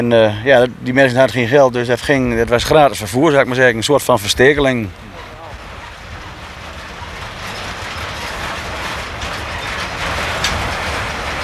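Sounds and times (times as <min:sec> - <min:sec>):
speech: 0:00.0 - 0:05.0
rhythmic clatter of wheels on rails: 0:00.0 - 0:11.4
train rolling past pushed by shunting locomotive: 0:00.0 - 0:11.4
brief metallic squeal of train: 0:04.9 - 0:11.4.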